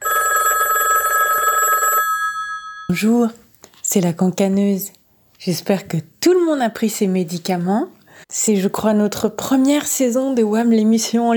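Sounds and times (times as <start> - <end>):
telephone ringing with a steady electronic trill: 0.0 - 2.9
speech: 2.9 - 11.3.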